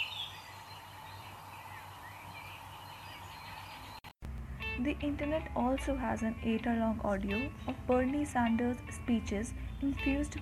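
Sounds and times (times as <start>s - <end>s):
bird calls and chirps in a forest: 0.0s - 4.1s
speech: 4.8s - 10.4s.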